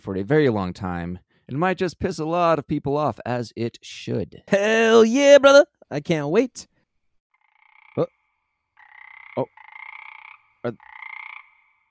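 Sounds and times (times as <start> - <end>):
speech: 0.0 - 6.7, 8.0 - 8.2, 9.4 - 9.6, 10.6 - 10.9
toads croaking and trilling: 7.3 - 11.8.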